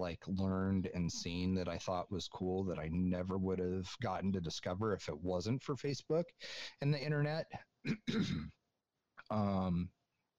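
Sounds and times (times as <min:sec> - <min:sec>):
speech: 0:00.0 - 0:08.6, 0:09.3 - 0:10.0
person clearing throat: 0:07.9 - 0:08.6.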